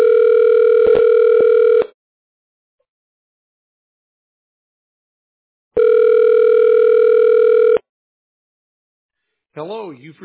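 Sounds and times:
telephone ringback tone during call transfer through a phone line: 0.0s - 1.9s, 5.8s - 7.8s.

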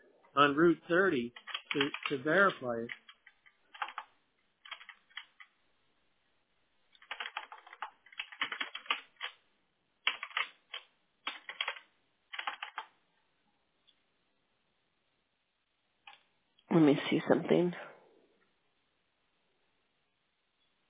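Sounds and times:
speech: 0.4s - 3.0s, 16.8s - 17.9s
typing on a computer keyboard: 1.3s - 5.6s, 6.9s - 9.4s, 10.0s - 13.0s.

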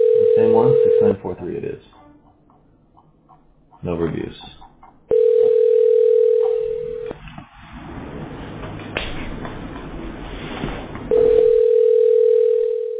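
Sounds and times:
outgoing phone call electronic ring tones on the line: 0.0s - 1.2s, 5.1s - 7.1s, 11.1s - 12.9s
speech: 0.4s - 2.0s, 3.8s - 4.6s.

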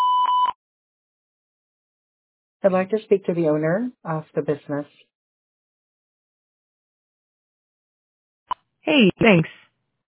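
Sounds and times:
answering machine beep, steady high electronic tone: 0.0s - 0.6s
speech: 2.6s - 5.1s, 8.9s - 9.6s.

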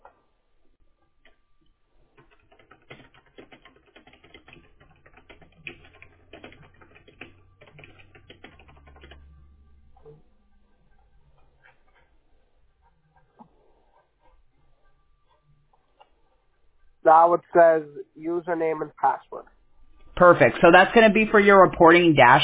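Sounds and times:
rapid typing on a computer keyboard as a first and last name are entered: 1.2s - 1.4s, 2.0s - 10.2s
speech: 17.1s - 19.4s, 20.2s - 22.4s.

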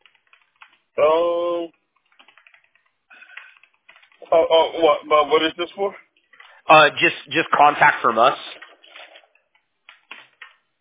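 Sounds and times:
typing on a computer keyboard: 0.0s - 1.0s, 1.8s - 4.3s, 8.6s - 10.7s
person's brief voiced sound: 1.0s - 1.8s, 4.2s - 6.0s, 6.6s - 8.7s
speech: 1.0s - 1.8s, 4.4s - 6.0s, 6.7s - 8.5s.

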